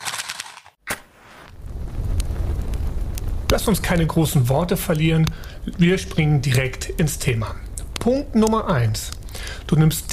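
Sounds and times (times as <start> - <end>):
campfire being lit and crackling: 1.1 - 10.1
low steady roar of campfire flames: 1.3 - 8.4
speech: 3.5 - 10.1.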